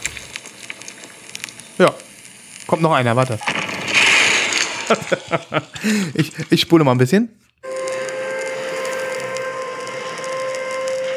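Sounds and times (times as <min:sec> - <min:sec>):
hissy crackly old record background: 0:00.0 - 0:11.1
speech: 0:01.8 - 0:02.1, 0:02.7 - 0:03.6, 0:04.9 - 0:07.4
laughter: 0:04.8 - 0:06.6
air raid siren from a war sound-effects record: 0:07.6 - 0:11.1.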